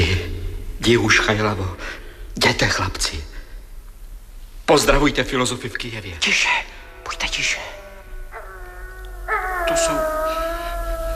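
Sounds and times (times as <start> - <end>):
low rumble: 0.0 - 11.1
speech: 0.8 - 3.3, 4.7 - 7.8, 9.7 - 10.2
second wavering wolf cry: 6.4 - 11.1
wolf howling: 6.7 - 11.1.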